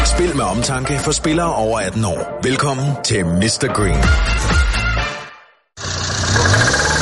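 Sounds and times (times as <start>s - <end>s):
speech: 0.2s - 4.7s
car engine running badly with a knocking, sputtering rumble: 5.8s - 7.0s.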